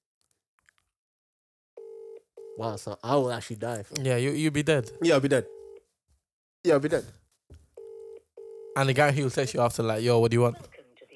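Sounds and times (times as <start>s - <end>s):
loud steady electronic phone ringing tone of an unanswered call: 1.8s - 2.7s, 4.7s - 5.8s, 7.8s - 8.9s
speech: 2.6s - 5.6s, 6.6s - 7.2s, 8.8s - 10.8s.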